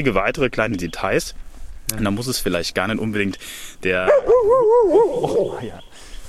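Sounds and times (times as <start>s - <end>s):
speech: 0.0s - 6.1s
dog whimpering after catching a scent: 4.2s - 5.8s.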